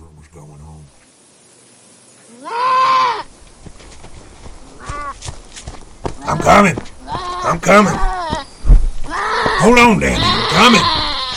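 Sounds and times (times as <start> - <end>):
speech: 0.4 - 1.1, 2.3 - 2.6, 6.3 - 8.1, 9.6 - 11.0
goat screaming in pain and fear: 2.3 - 3.3, 4.7 - 5.2, 6.2 - 11.3.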